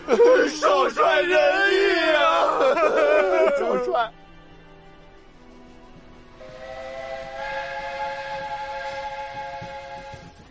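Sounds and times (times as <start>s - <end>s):
laughter: 0.0s - 4.2s
speech: 0.1s - 1.9s, 3.6s - 4.2s
departing steam train rumble and hiss: 5.4s - 10.4s
steam train whistle: 6.4s - 10.4s.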